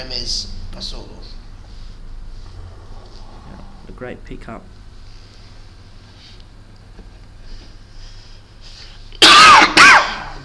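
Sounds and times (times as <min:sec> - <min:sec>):
speech: 0:00.0 - 0:01.3, 0:03.9 - 0:04.8
faint hum: 0:00.0 - 0:10.4
person clearing throat and coughing against a tickle in the throat: 0:09.2 - 0:10.4.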